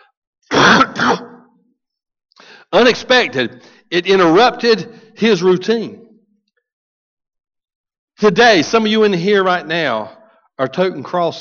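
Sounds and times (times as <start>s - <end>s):
two-part throat clearing: 0.5s - 1.5s
speech: 2.7s - 6.0s, 8.2s - 11.4s.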